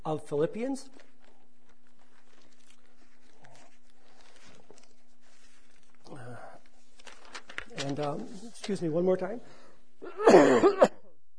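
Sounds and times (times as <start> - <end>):
speech: 0.0 - 1.1, 7.8 - 11.0
speaker coughing after standing up to speak: 10.0 - 11.2
throat clearing: 10.0 - 11.2.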